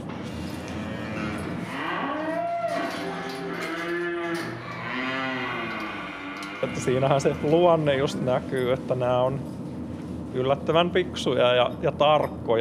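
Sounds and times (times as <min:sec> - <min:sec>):
steady hum: 0:00.0 - 0:12.5
cow mooing in a barn: 0:00.4 - 0:08.0
speech: 0:06.6 - 0:09.6, 0:10.3 - 0:12.5.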